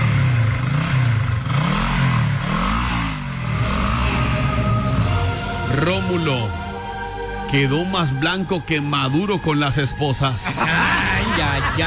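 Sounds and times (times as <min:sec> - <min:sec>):
motorcycle taxi engine revving while accelerating quickly: 0:00.0 - 0:07.4
speech: 0:05.9 - 0:06.6, 0:07.5 - 0:11.8
laughter: 0:10.3 - 0:11.8.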